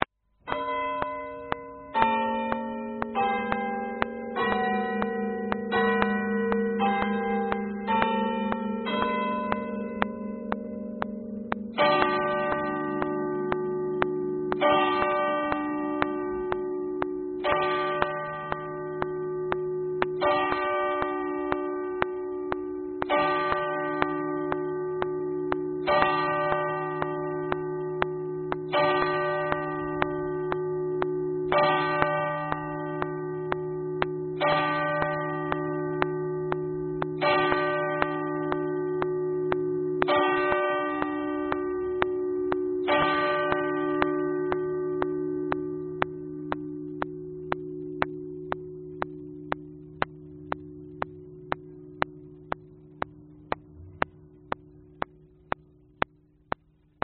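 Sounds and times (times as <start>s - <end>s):
clock chimes: 0.5s - 55.2s.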